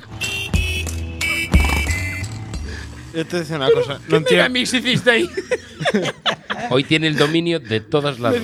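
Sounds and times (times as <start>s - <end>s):
petrol motorcycle engine revving: 0.0s - 3.2s
speech: 3.1s - 8.4s
laughter: 3.5s - 8.4s.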